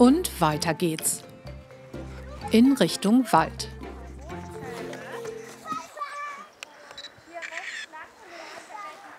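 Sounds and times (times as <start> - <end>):
speech: 0.0 - 1.3, 2.5 - 3.8
children talking and playing: 1.5 - 9.1
camera shutter click taking a photo: 7.0 - 7.9.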